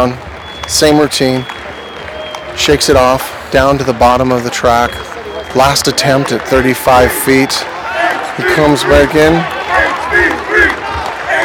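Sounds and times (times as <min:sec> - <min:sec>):
speech: 0:00.0 - 0:01.6, 0:02.6 - 0:07.7, 0:08.4 - 0:10.4
crowd cheering and shouting: 0:00.0 - 0:11.4
several men yelling: 0:06.3 - 0:11.4.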